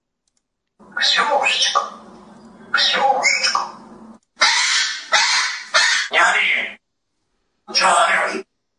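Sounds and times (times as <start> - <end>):
talking parrot giving raspy speech-like squawks: 0.8 - 6.8, 7.7 - 8.5.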